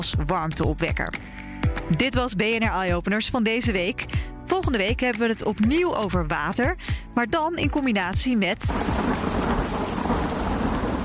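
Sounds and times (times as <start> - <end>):
speech: 0.0 - 9.3
heavy rain pouring in a thunderstorm: 8.7 - 11.0
low rumble of thunder: 8.7 - 11.0.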